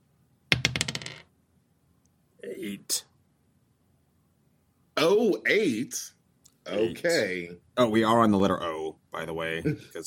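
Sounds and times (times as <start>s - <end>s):
dice clattering across a hard surface: 0.5s - 1.3s
speech: 2.4s - 3.1s, 5.0s - 10.0s.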